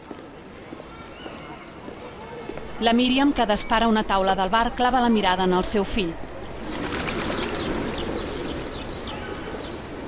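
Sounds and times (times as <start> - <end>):
speech: 2.8 - 6.2
flock of birds fluttering overhead: 6.6 - 8.9.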